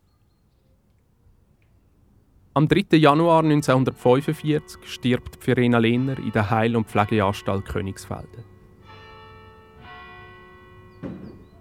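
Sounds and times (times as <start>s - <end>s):
speech: 2.6s - 8.5s
church bell tolling: 3.0s - 11.5s.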